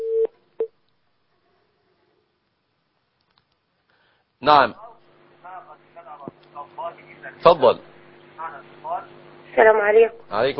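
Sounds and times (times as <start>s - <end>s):
steady mid-pitched telephone call-connecting tone: 0.0s - 0.7s
speech: 4.4s - 4.8s, 7.3s - 7.9s, 9.6s - 10.5s.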